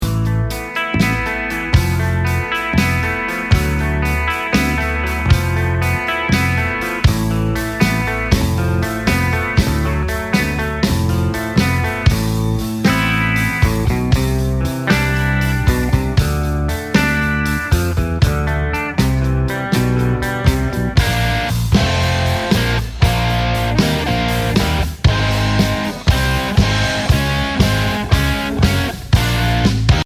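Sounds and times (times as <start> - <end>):
guitar chord progression etude: 0.0 - 30.0.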